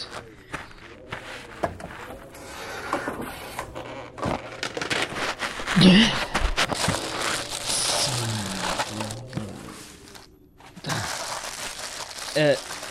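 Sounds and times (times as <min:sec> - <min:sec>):
voices: 0:00.0 - 0:03.9, 0:07.3 - 0:11.1
plastic tarp from a car being shaken out and crinkled: 0:04.2 - 0:12.8
speech: 0:05.8 - 0:06.2.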